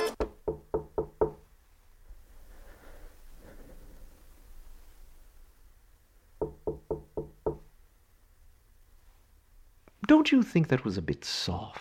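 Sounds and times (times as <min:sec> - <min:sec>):
knocking on a door: 0:00.2 - 0:01.4, 0:06.4 - 0:07.7
speech: 0:10.1 - 0:11.7.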